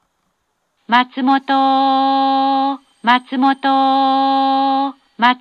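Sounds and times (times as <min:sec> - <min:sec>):
limited express train at a station: 0:01.1 - 0:05.3.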